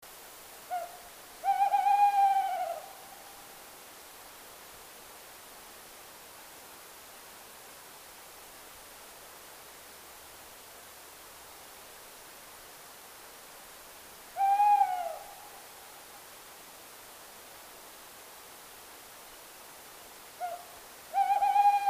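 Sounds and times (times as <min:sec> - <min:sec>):
tawny owl: 0:00.7 - 0:03.0, 0:14.4 - 0:15.5, 0:20.4 - 0:21.8.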